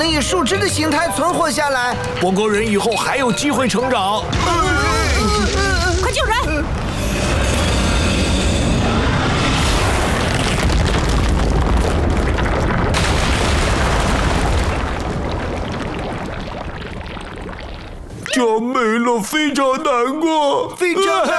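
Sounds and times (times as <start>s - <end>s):
speech: 0.0s - 6.8s, 18.4s - 21.3s
booming and crackling rumble of explosions: 4.3s - 18.2s.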